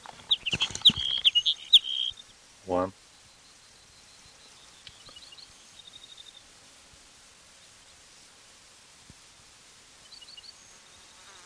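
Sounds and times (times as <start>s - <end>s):
hedge sparrow singing: 0.0s - 2.4s, 3.0s - 6.5s, 10.0s - 11.4s
speech: 2.7s - 3.0s.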